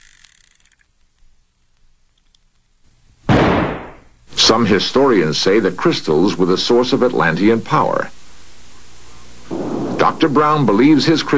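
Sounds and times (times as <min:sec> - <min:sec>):
revolver gunshot from a Russian roulette trigger pull: 0:03.3 - 0:04.1
speech: 0:04.5 - 0:08.2, 0:10.2 - 0:11.3.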